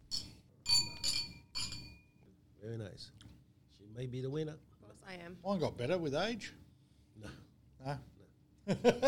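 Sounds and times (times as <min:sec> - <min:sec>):
wine glasses of Malbec clinking together in a toast: 0:00.0 - 0:02.0
speech: 0:02.6 - 0:06.6, 0:07.2 - 0:08.1, 0:08.7 - 0:09.0.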